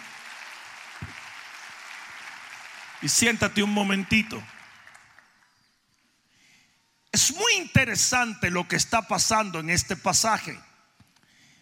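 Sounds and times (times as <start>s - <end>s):
large congregation applauding: 0.0s - 5.6s
speech: 3.0s - 4.6s, 7.2s - 10.7s.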